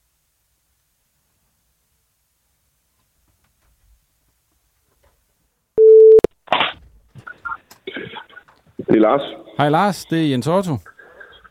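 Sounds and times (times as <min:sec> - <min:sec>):
telephone ringing tone: 0:05.8 - 0:06.3
speech: 0:09.0 - 0:10.9.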